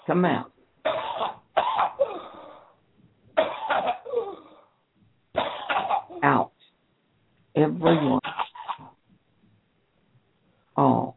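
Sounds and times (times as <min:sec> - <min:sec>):
speech: 0:00.1 - 0:00.5, 0:06.2 - 0:06.5, 0:07.6 - 0:08.2
deep harsh coughing: 0:00.8 - 0:02.8, 0:03.4 - 0:04.8, 0:05.4 - 0:06.5, 0:07.9 - 0:09.0.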